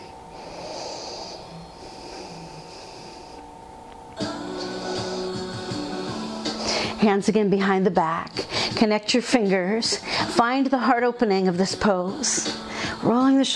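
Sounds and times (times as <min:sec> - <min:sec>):
snort-like breaths: 0:00.0 - 0:03.4
deep inhale taken while reaching up in a yoga lunge: 0:00.0 - 0:03.6, 0:04.6 - 0:05.5, 0:06.4 - 0:07.0
speech: 0:07.0 - 0:13.5.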